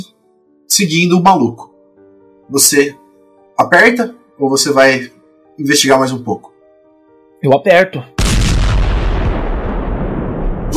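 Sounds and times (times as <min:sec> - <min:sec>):
speech: 0:00.7 - 0:01.7, 0:02.5 - 0:03.0, 0:03.6 - 0:06.5, 0:07.4 - 0:08.1
loud explosion with heavy rumbling roar: 0:08.2 - 0:10.7.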